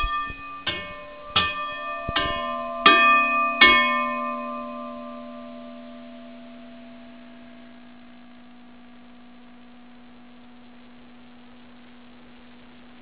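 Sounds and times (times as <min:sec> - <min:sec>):
station bell: 0:00.0 - 0:08.6.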